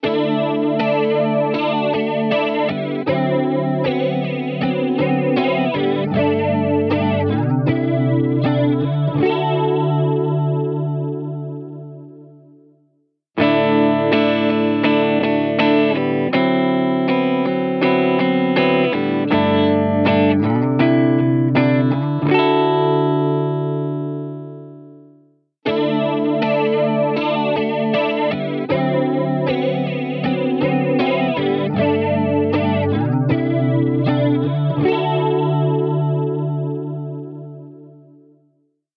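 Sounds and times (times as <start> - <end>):
guitar with flanger effect: 0.0 - 12.7, 13.4 - 38.3.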